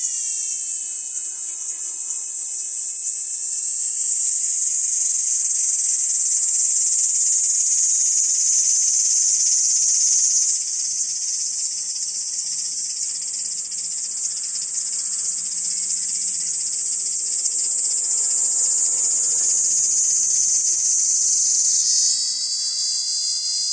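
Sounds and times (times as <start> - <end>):
Kaempfer cicada buzzing in a high-pitched drone: 0.0 - 23.7.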